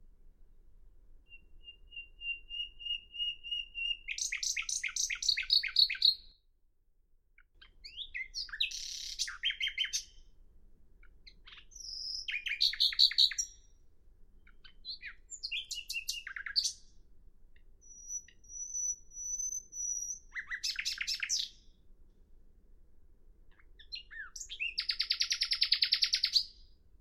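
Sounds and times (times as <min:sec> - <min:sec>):
nightingale singing: 0:01.3 - 0:06.4, 0:07.4 - 0:10.3, 0:11.0 - 0:13.8, 0:14.4 - 0:17.0, 0:17.6 - 0:21.8, 0:23.5 - 0:26.8.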